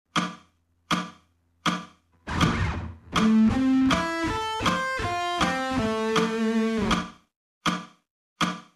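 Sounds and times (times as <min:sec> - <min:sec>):
guitar sweep picking: 0:02.3 - 0:06.9.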